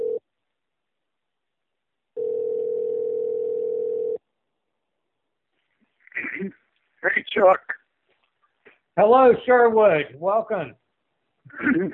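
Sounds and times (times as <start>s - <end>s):
telephone dial tone on a line placing a call: 2.2s - 4.2s
speech: 7.4s - 7.8s, 9.0s - 10.8s, 11.5s - 11.9s.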